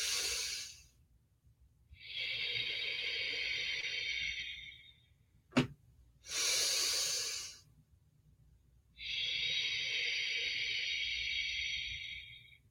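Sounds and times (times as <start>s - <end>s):
slow deep breathing: 0.0s - 1.0s, 1.9s - 5.3s, 6.2s - 7.8s, 8.9s - 12.6s.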